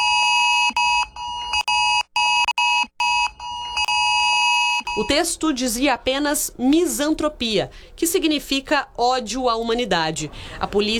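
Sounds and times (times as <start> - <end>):
cell phone extreme emergency alert tone: 0.0 - 5.2
speech: 5.0 - 10.9.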